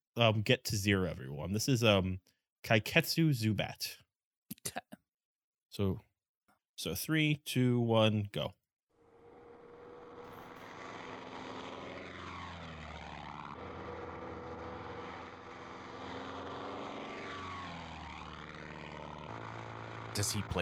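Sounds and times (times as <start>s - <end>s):
speech: 0.2s - 4.0s, 4.6s - 4.8s, 5.8s - 6.1s, 6.8s - 8.6s, 20.2s - 20.6s
propeller airplane engine droning as the plane sweeps past: 9.0s - 20.6s.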